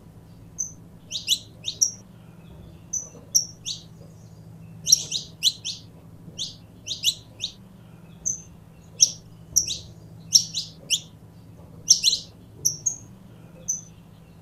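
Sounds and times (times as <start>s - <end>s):
faint steady background hum: 0.0s - 14.4s
purebred Belgian canary singing with piercing chirps and whistles: 0.6s - 2.0s, 2.9s - 3.9s, 4.8s - 7.6s, 8.2s - 11.2s, 11.8s - 13.1s, 13.7s - 13.9s.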